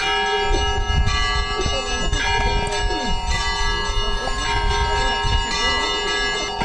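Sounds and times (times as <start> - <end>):
church bells pealing in the Sysert district: 0.0 - 6.6.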